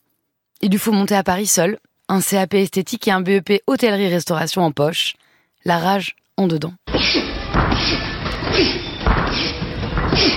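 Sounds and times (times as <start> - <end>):
speech: 0.6 - 9.4
busy boxing gym background: 6.9 - 10.3
heavy punches landing during Muay Thai training: 6.9 - 10.3.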